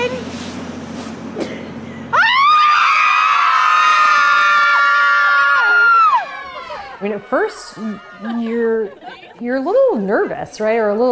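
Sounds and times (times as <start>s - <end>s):
group of mothers screaming together in a parking lot: 2.1s - 8.6s
laughter: 5.6s - 10.9s
speech: 7.3s - 11.1s.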